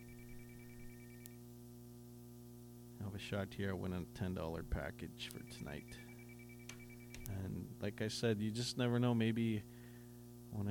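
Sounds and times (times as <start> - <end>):
telephone ringing tone over a call line: 0.0 - 1.3, 5.5 - 7.3
steady low hum on call line: 0.0 - 10.6
speech: 3.0 - 6.1, 7.3 - 9.7
click of call line: 6.7 - 7.4.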